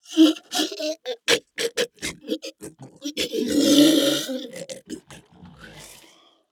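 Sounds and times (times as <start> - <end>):
zombie skeleton death sound: 0.1 - 5.2.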